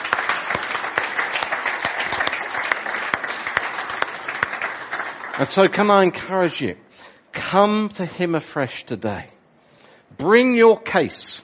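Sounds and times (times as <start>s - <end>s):
audience applauding: 0.0s - 6.2s
speech: 5.4s - 6.8s, 7.5s - 9.3s, 10.2s - 11.4s.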